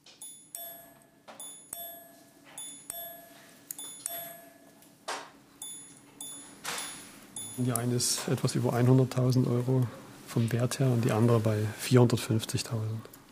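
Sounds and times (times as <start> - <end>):
minute repeater watch chiming the time in gong strikes: 0.2 - 4.8
speech: 7.6 - 13.2.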